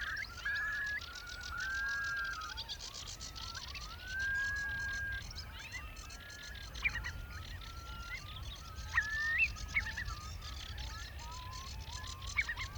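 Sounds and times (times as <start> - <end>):
curlew calls: 0.0 - 12.7.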